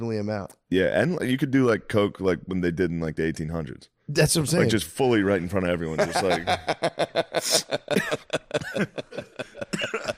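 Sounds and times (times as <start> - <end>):
speech: 0.0 - 9.9
laughter: 5.8 - 10.1
person coughing: 8.0 - 10.1.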